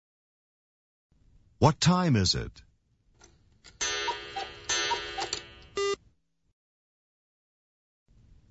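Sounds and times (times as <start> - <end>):
speech: 1.6 - 2.7
bright clock tick: 3.8 - 5.7
clock striking two o'clock: 3.8 - 6.0.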